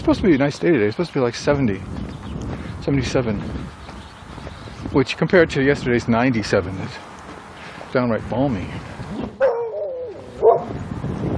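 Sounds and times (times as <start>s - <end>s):
speech: 0.0s - 2.0s, 2.8s - 3.8s, 4.9s - 7.1s, 7.9s - 9.0s
dog barking: 9.4s - 10.8s.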